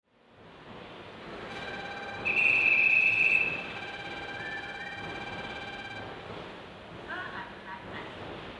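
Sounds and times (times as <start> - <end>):
bell: 1.5 - 6.1.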